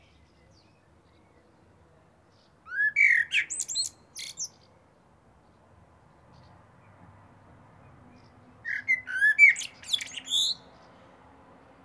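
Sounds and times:
common blackbird Turdus merula song of mellow whistles and squeaky twitters: 2.7 - 4.6, 8.7 - 10.6.

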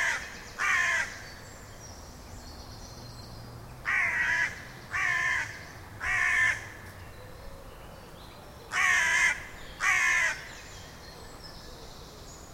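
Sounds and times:
Carrion crow Corvus corone giving harsh hoarse caws: 0.0 - 1.2, 3.9 - 6.8, 8.7 - 10.5.

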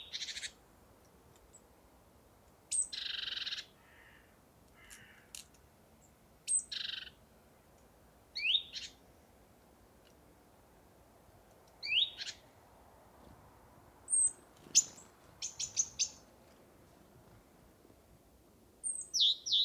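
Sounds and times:
Great tit Parus major calls: 0.0 - 0.6, 2.7 - 5.4, 6.0 - 7.2, 8.4 - 9.0, 11.8 - 12.5, 14.1 - 16.4, 18.8 - 19.6
steady low background hiss: 0.0 - 19.6.

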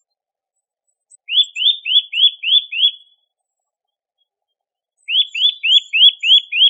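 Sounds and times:
Eurasian Nuthatch Sitta europaea whistled calls: 1.1 - 3.1, 5.0 - 6.6.

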